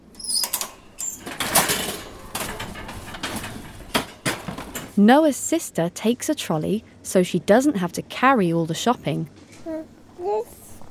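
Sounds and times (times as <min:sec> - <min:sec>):
supermarket automatic doors sliding open: 0:00.0 - 0:05.0
busy store noise: 0:00.0 - 0:10.6
speech: 0:05.0 - 0:09.4.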